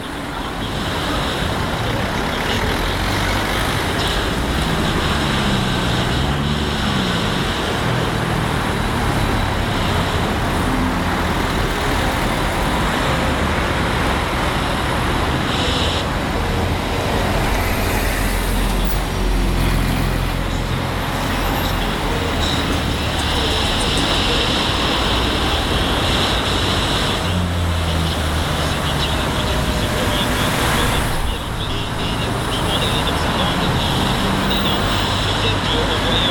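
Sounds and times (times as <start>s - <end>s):
car engines idling at a red light: 0.0s - 36.2s
dense road traffic at an intersection: 0.0s - 36.2s.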